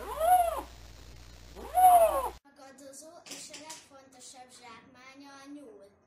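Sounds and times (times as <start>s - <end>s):
lynx rough meowing mating call in spring: 0.0s - 0.7s, 1.6s - 2.4s.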